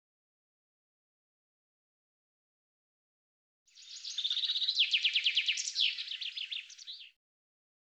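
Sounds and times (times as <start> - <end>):
common chaffinch song: 3.7 - 7.2.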